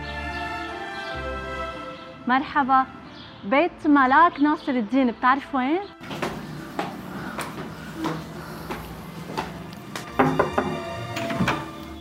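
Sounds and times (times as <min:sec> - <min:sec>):
speech: 0:02.3 - 0:06.2
front door being opened with wooden thunks and knocks: 0:06.0 - 0:08.2, 0:09.3 - 0:11.8.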